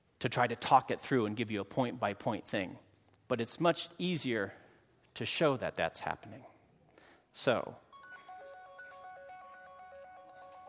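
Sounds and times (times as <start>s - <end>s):
speech: 0.2s - 4.6s, 5.2s - 6.5s, 7.4s - 7.8s
mobile phone ringtone with repeating electronic notes: 7.9s - 10.6s.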